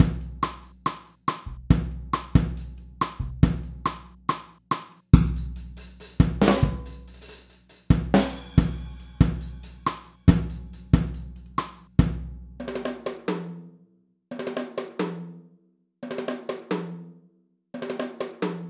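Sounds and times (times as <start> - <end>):
dry drum kit: 0.0 - 13.0.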